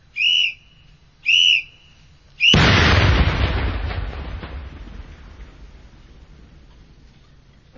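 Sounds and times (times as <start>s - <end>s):
sharp warning whistle blasts: 0.0s - 2.8s
controlled detonation of PMD-6 wooden landmines with a deep roaring boom: 2.5s - 6.6s.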